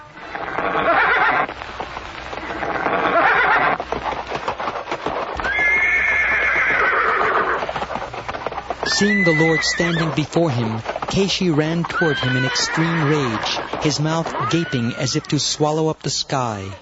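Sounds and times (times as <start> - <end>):
galloping horse hooves: 0.0 - 16.8
horse neighing: 0.3 - 1.5, 2.5 - 3.8, 5.4 - 7.7, 8.8 - 10.2, 11.8 - 15.1
speech: 9.0 - 16.8.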